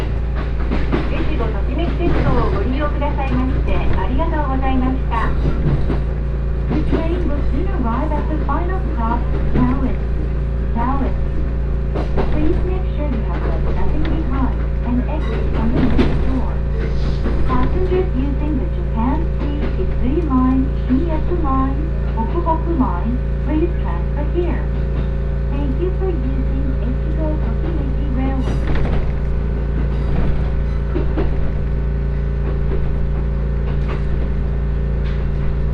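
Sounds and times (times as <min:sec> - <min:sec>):
train passengers talking: 0:00.0 - 0:32.0
rumble and hum of a moving train car: 0:00.0 - 0:35.7.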